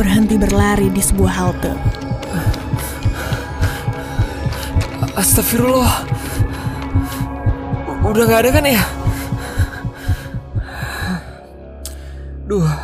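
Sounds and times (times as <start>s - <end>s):
speech: 0.0s - 2.5s, 5.2s - 6.5s, 8.0s - 9.0s, 12.5s - 12.8s
fast pounding heartbeat: 0.0s - 11.2s.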